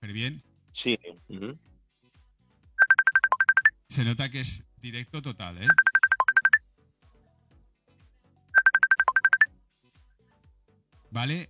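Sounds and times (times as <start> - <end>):
speech: 0.2 - 1.7, 3.9 - 5.9, 11.1 - 11.4
outgoing phone call ringing tone of trilling electronic beeps: 2.8 - 3.7, 5.7 - 6.6, 8.6 - 9.5.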